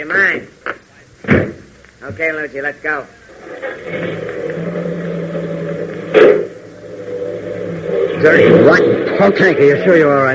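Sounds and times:
speech: 0:00.0 - 0:00.6, 0:02.1 - 0:04.3, 0:08.2 - 0:10.3
car engine humming as it drives away: 0:03.1 - 0:10.3.

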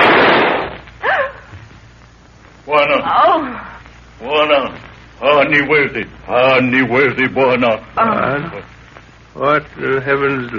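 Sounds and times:
gunshot: 0:00.0 - 0:00.8
speech: 0:02.8 - 0:08.8, 0:09.4 - 0:10.5.

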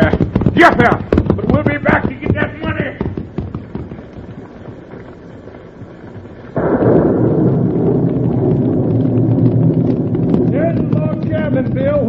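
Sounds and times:
rough rumbling background: 0:00.0 - 0:12.0
speech: 0:00.6 - 0:01.2
gunshots: 0:06.6 - 0:12.0.

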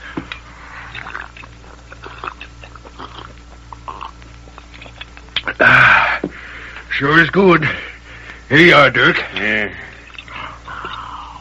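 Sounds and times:
low steady hum: 0:00.0 - 0:11.3
man gulping cool water: 0:00.2 - 0:06.2
speech: 0:07.0 - 0:07.8, 0:08.5 - 0:09.9.

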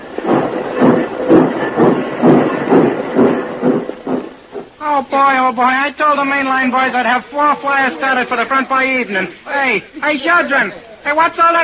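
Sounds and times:
small locomotive chugging in a congested railroad yard: 0:00.0 - 0:04.3
continuous rumbling hiss: 0:00.0 - 0:11.6
speech: 0:05.0 - 0:11.6.

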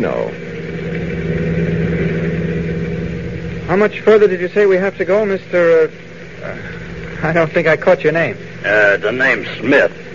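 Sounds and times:
speech: 0:00.0 - 0:00.6, 0:03.7 - 0:10.0
car engine running while driving: 0:00.0 - 0:07.2.

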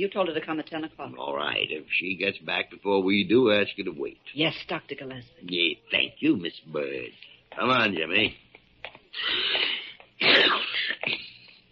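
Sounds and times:
speech: 0:00.0 - 0:08.4, 0:09.2 - 0:11.2
man sneezing: 0:09.2 - 0:11.1.

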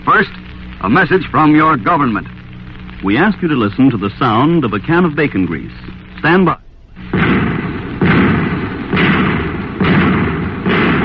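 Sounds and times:
speech: 0:00.0 - 0:02.4, 0:03.0 - 0:07.2
heavy rumble of anti-tank shell fire: 0:00.0 - 0:11.0
anti-tank shells being fired: 0:07.0 - 0:11.0.

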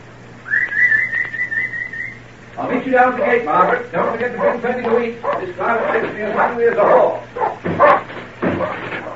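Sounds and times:
sharp whistle calling dogs: 0:00.4 - 0:02.3
speech: 0:02.6 - 0:08.0
dogs barking in overlapping yaps and woofs: 0:03.0 - 0:09.1.

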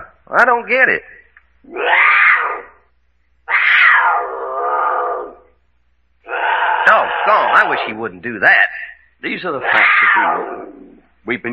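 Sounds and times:
speech: 0:00.3 - 0:02.7, 0:07.3 - 0:11.5
mountain lion screaming: 0:01.6 - 0:02.8, 0:03.5 - 0:05.5, 0:06.2 - 0:08.0, 0:09.6 - 0:11.1.

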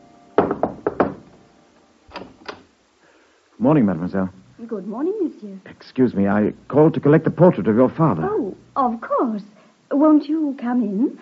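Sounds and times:
knocking on a door: 0:00.4 - 0:01.4
speech: 0:03.6 - 0:11.2.

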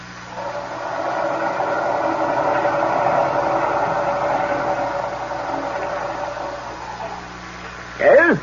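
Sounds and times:
low steady hum: 0:00.0 - 0:08.4
submarine engine straining against fouled propeller: 0:00.0 - 0:08.4.

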